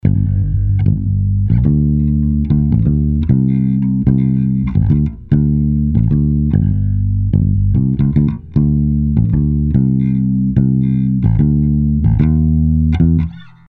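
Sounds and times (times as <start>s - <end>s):
bass: 0.0s - 13.6s.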